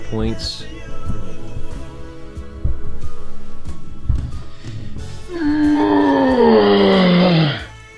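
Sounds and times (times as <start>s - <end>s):
person groaning while stretching after getting out of bed: 5.2s - 7.8s.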